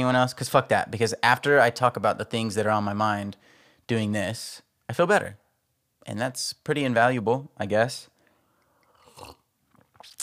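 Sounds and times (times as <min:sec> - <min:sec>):
speech: 0:00.0 - 0:05.4, 0:06.0 - 0:08.1
person slurping a beverage: 0:08.7 - 0:10.2
gulping and smacking mouth clicks while drinking: 0:08.8 - 0:10.2.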